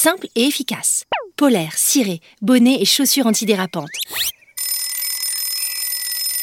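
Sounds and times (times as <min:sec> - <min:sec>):
speech: 0:00.0 - 0:04.4
electronic alarm clock ringing: 0:04.6 - 0:06.4.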